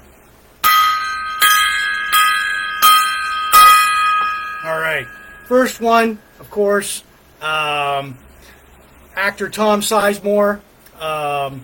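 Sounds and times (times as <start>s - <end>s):
resonant gong strikes: 0.6s - 6.4s
speech: 5.0s - 8.2s, 9.2s - 11.6s.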